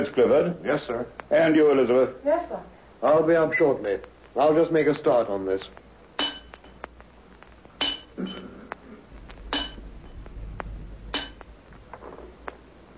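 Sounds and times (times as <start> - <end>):
speech: 0.0 - 5.8
metallic taps of chipping at something hard: 6.2 - 9.9, 11.1 - 11.5
low rumble: 9.0 - 12.9.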